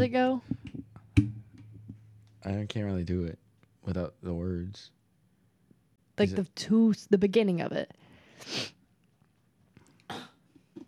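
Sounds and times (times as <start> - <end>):
speech: 2.5 - 5.0, 6.2 - 8.8
voice making breathy sputtering fart imitation: 10.1 - 10.4.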